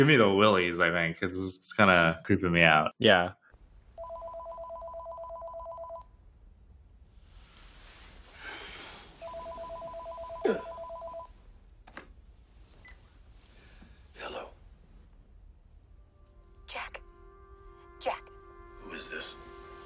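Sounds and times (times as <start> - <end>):
speech: 0.0 - 3.4
telephone ringing in electronic warbling trills: 4.0 - 6.1, 9.2 - 11.4
faint rustling: 7.0 - 15.4.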